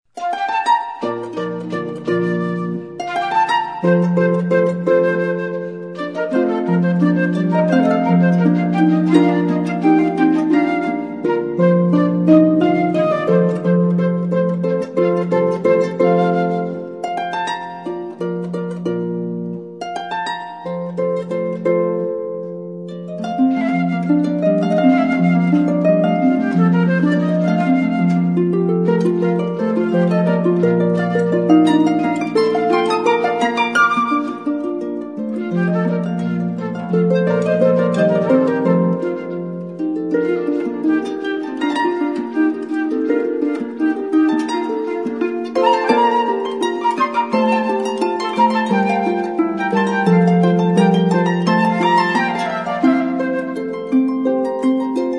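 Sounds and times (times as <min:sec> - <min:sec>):
harp duo playing classical music: 0:00.0 - 0:55.1.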